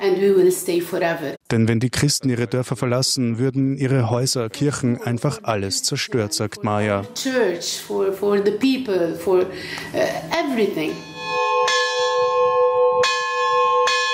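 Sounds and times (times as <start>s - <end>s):
speech: 0.1s - 11.4s
monastery church bells ringing: 10.8s - 14.1s.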